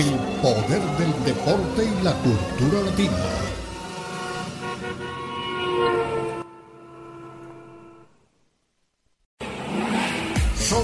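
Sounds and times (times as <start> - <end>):
speech: 0.0 - 3.6
racing car engines roaring: 0.0 - 6.4, 9.4 - 10.8.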